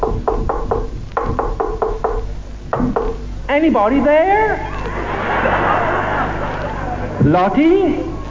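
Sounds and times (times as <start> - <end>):
firm knocks on a wooden door: 0.0 - 2.2
speech: 3.6 - 4.7, 7.2 - 8.1
laughter: 4.4 - 8.2.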